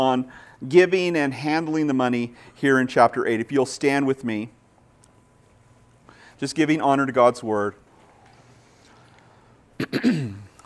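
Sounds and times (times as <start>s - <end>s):
speech: 0.0s - 4.6s, 6.4s - 7.8s, 9.8s - 10.4s
person coughing: 9.8s - 10.6s
throaty voiced throat clearing: 9.8s - 10.6s.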